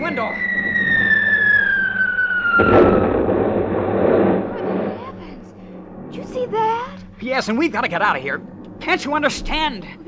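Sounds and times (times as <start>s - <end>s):
speech: 0.0s - 0.8s, 7.2s - 10.0s
high slowly falling whine: 0.0s - 10.0s
anti-aircraft gunfire: 1.3s - 6.8s.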